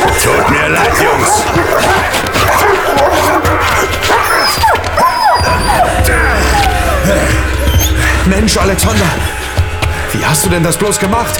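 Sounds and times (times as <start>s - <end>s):
two dogs barking and yelping in a frantic scuffle: 0.0s - 8.3s
speech: 8.5s - 9.4s, 10.2s - 11.3s.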